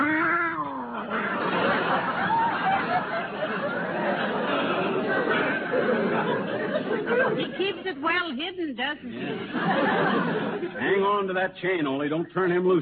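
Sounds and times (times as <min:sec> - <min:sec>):
cat caterwauling: 0:00.0 - 0:01.0
laughter: 0:00.6 - 0:08.0, 0:09.1 - 0:11.2
speech: 0:07.8 - 0:12.8.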